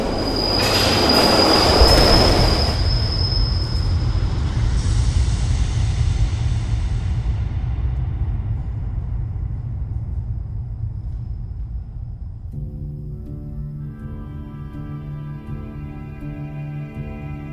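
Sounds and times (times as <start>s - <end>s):
train wheel metallic squeal: 0.0s - 4.5s
train rumbling along the tracks: 0.0s - 13.1s.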